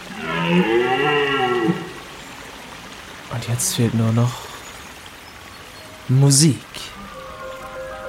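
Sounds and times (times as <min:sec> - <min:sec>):
red deer stag bellowing in rut: 0:00.1 - 0:02.0
speech: 0:00.5 - 0:00.9, 0:03.5 - 0:04.5, 0:06.1 - 0:07.0.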